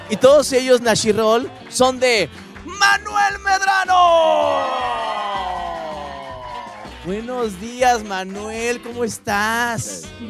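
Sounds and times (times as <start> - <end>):
speech: 0.1 - 5.3, 7.1 - 10.2
crowd of fans cheering and screaming in a radio station studio in Mexico: 2.7 - 7.7.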